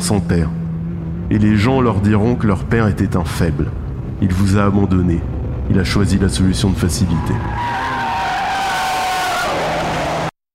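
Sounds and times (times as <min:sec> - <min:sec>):
speech: 0:00.0 - 0:00.6, 0:01.3 - 0:08.0
car tires screeching in a hard skid to a halt: 0:06.7 - 0:10.4.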